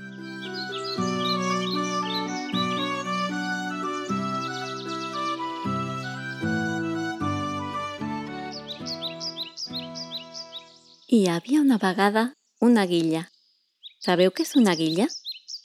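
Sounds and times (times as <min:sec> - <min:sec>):
gentle melodic music with sustained notes: 0:00.0 - 0:11.1
birds chirping and tweeting in a forest: 0:00.0 - 0:15.6
speech: 0:11.1 - 0:13.3, 0:14.0 - 0:15.2.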